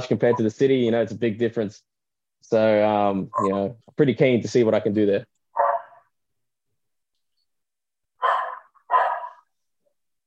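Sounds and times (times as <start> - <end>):
speech: 0.0 - 5.4
dog barking: 5.6 - 6.1, 8.2 - 9.5.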